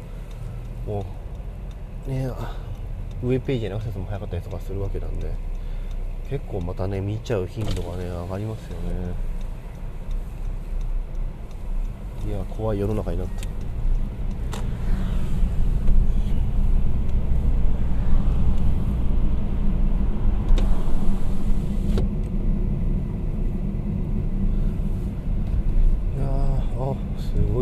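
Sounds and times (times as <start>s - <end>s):
road traffic engines rumbling in a traffic jam: 0.0s - 27.6s
speech: 0.9s - 1.2s, 2.0s - 5.5s, 6.3s - 9.3s, 12.2s - 13.5s.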